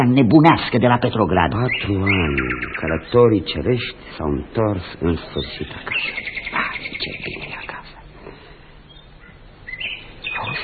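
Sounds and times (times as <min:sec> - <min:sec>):
speech: 0:00.0 - 0:07.7
bird singing: 0:01.0 - 0:04.0, 0:05.1 - 0:07.8, 0:08.8 - 0:10.6.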